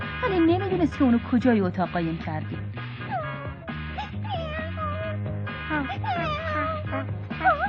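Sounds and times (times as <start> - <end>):
steady music: 0.0 - 7.6
speech: 0.3 - 2.8, 5.9 - 7.6
cat meowing: 3.1 - 5.2, 5.8 - 7.6.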